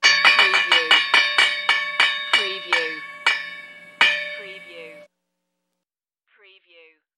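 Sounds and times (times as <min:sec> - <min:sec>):
old bell ringing: 0:00.0 - 0:05.1.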